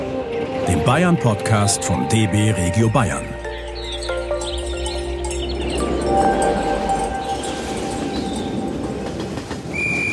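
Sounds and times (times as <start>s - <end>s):
speech: 0.8s - 3.3s
train pulling away: 3.8s - 10.1s
brief high whistle-like tone: 9.7s - 10.1s.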